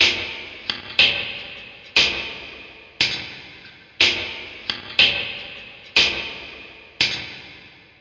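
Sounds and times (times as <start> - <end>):
creepy clock tick tock: 0.0 - 7.7.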